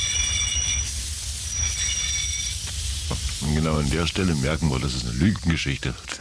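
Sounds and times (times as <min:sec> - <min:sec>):
train wheels squealing pulling into Munich main station: 0:00.0 - 0:03.2
speech: 0:03.1 - 0:06.1.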